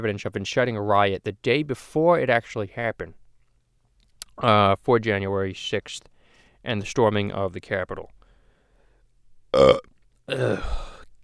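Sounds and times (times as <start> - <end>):
speech: 0.0 - 3.2, 4.4 - 8.2, 9.5 - 11.2
loud rough throaty burp: 9.5 - 11.2.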